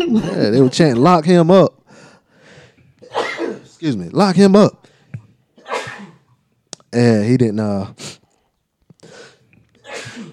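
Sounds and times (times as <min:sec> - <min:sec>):
speech: 0:00.0 - 0:01.8, 0:03.8 - 0:04.8, 0:06.9 - 0:08.1
person sneezing: 0:03.0 - 0:03.8, 0:05.6 - 0:06.3, 0:09.1 - 0:10.3.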